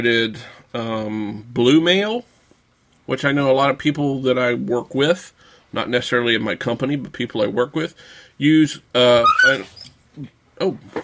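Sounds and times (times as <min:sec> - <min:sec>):
speech: 0:00.0 - 0:02.3, 0:03.1 - 0:11.0
dog yelping as an office chair rolls over it: 0:09.2 - 0:10.0.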